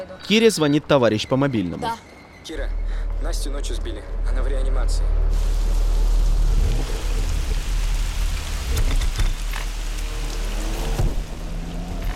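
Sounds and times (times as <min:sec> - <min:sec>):
speech: 0:00.0 - 0:05.6
evening rain falling: 0:05.3 - 0:12.1.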